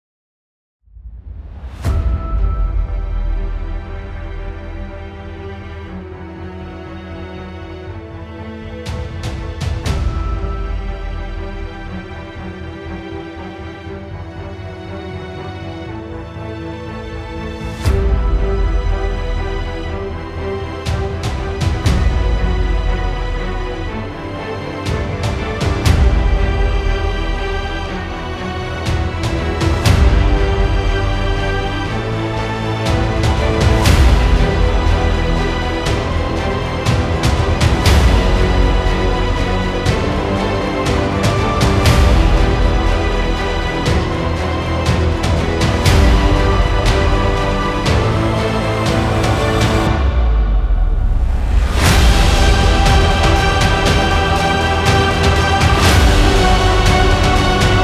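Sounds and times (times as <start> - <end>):
epic adventure music: 0.9 - 57.8.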